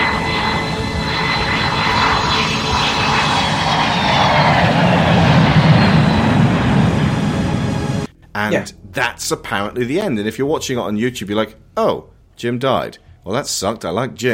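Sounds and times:
airplane engine droning as the aircraft flies overhead: 0.0s - 8.7s
speech: 8.5s - 14.3s.

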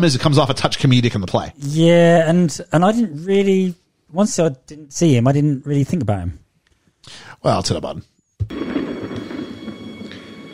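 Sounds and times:
speech: 0.0s - 6.4s, 7.1s - 8.7s
low steady rumble of thunder: 8.4s - 10.5s
hiss of rain: 8.5s - 10.5s.

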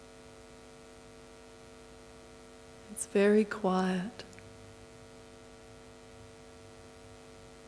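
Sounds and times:
faint static hiss: 0.0s - 7.6s
low electrical hum from lights and AV equipment in a meditation hall: 0.0s - 7.6s
speech: 2.9s - 4.3s.

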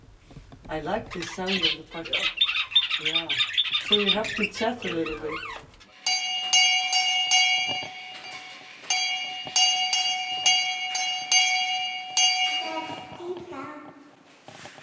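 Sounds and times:
soft rustling: 0.0s - 5.9s, 7.7s - 14.8s
speech: 0.7s - 5.7s
old pull-cord doorbell ringing with bright metallic strikes: 6.0s - 13.2s.

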